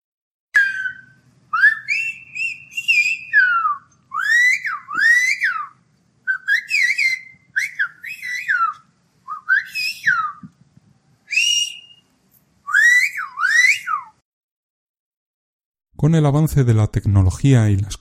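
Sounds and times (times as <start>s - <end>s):
Silbo Gomero whistled language: 0.5s - 10.5s, 11.2s - 14.2s
speech: 16.0s - 17.9s.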